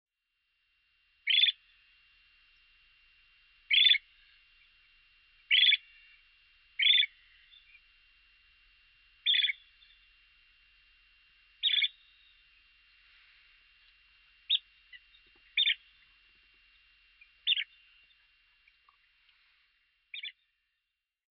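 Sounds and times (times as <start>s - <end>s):
long-billed dowitcher calling: 1.2s - 1.6s, 3.7s - 4.8s, 5.5s - 6.2s, 6.8s - 7.9s, 9.2s - 10.1s, 11.6s - 12.5s, 14.4s - 16.2s, 17.2s - 19.0s, 20.1s - 20.6s.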